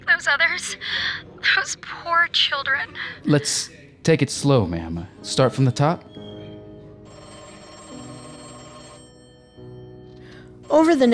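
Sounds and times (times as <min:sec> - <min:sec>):
speech: 0:00.2 - 0:06.1, 0:10.7 - 0:11.1
telephones ringing with bright electronic tones: 0:07.0 - 0:11.1.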